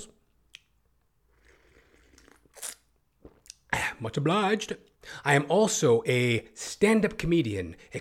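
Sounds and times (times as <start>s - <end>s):
person slurping a sip of coffee: 1.2s - 3.7s
speech: 4.0s - 7.9s.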